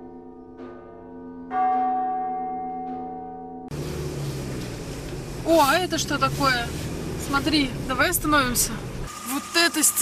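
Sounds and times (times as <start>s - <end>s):
church bell tolling for service: 0.0s - 3.7s
speech: 5.5s - 8.9s, 9.6s - 10.0s.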